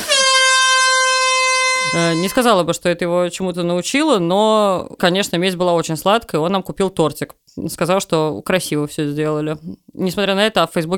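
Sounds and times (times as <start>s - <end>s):
vuvuzela blast: 0.0s - 2.6s
speech: 1.9s - 10.9s.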